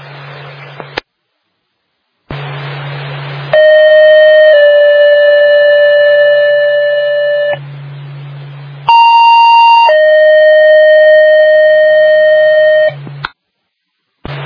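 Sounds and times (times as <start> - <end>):
electronic siren tones from a fire dispatch radio during a siren check: 3.5 - 7.6, 8.9 - 13.0.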